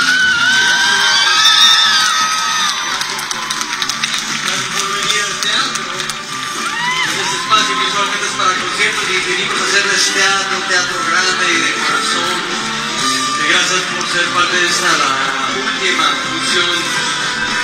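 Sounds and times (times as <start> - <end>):
shrill whoops and high-pitched shrieks from a theatre audience: 0.0 - 3.0, 6.6 - 7.8
large theatre audience screaming and cheering in an ovation: 0.0 - 17.6.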